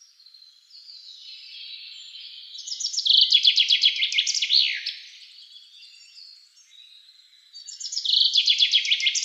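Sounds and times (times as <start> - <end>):
Common chaffinch Fringilla coelebs singing: 1.0 - 5.1, 7.6 - 9.2.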